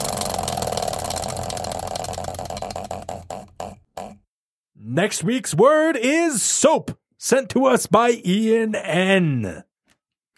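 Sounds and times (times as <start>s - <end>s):
prize wheel spinning with rapid ticking: 0.0s - 3.8s
speech: 4.9s - 9.7s.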